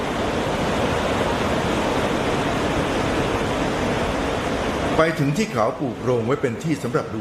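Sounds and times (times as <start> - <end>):
waterfall roaring: 0.0 - 7.1
speech: 5.0 - 7.1.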